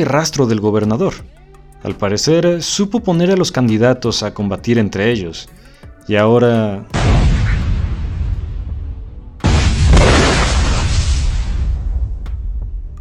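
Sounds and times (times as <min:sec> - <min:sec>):
speech: 0:00.0 - 0:07.4
explosion blowing up a government house: 0:06.9 - 0:12.9.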